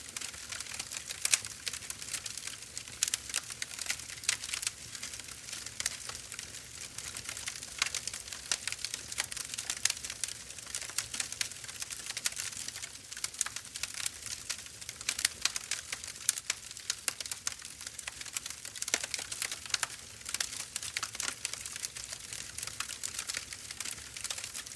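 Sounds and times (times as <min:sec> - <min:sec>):
campfire crackling outdoors: 0:00.0 - 0:24.7.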